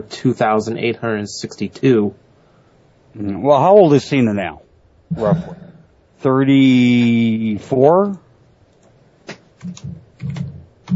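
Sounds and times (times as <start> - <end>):
speech: 0.0 - 2.2, 3.2 - 8.2, 9.6 - 10.9
typing on a computer keyboard: 9.6 - 10.9.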